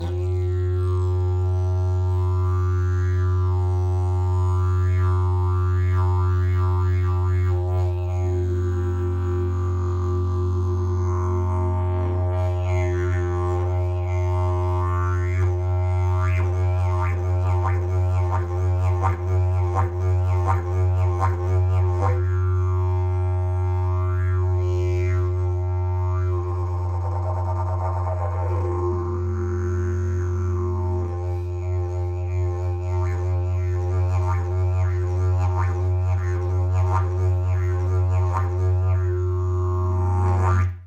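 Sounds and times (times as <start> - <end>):
didgeridoo: 0.0 - 40.8.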